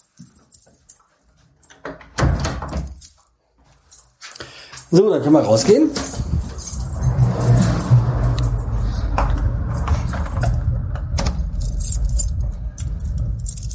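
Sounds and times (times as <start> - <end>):
bunch of keys jangling: 0.0 - 13.7
speech: 4.9 - 6.2
steady low rumble: 6.1 - 13.7.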